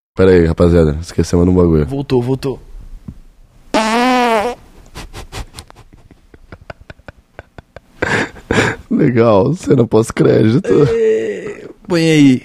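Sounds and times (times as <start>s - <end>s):
speech: 0.2s - 2.7s, 9.0s - 11.3s, 11.9s - 12.4s
loud buzzy fart: 3.7s - 4.6s.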